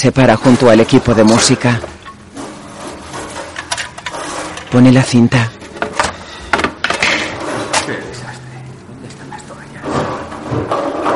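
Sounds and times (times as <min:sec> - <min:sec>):
speech: 0:00.0 - 0:02.0, 0:04.7 - 0:05.6
rummaging through wooden drawers inside a house: 0:00.0 - 0:08.0, 0:09.8 - 0:11.1
clattering knocks: 0:00.2 - 0:04.8, 0:05.6 - 0:07.9, 0:09.8 - 0:11.1.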